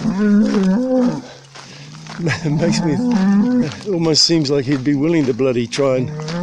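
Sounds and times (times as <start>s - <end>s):
bull in a herd mooing along a fence: 0.0s - 4.0s, 5.9s - 6.4s
speech: 0.2s - 1.4s, 2.2s - 6.4s
laughter: 2.2s - 3.2s.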